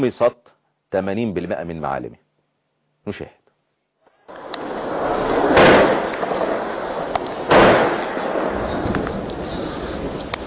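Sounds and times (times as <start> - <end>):
speech: 0.0 - 2.2, 3.0 - 3.4
heavy artillery shelling explosions: 4.4 - 10.4.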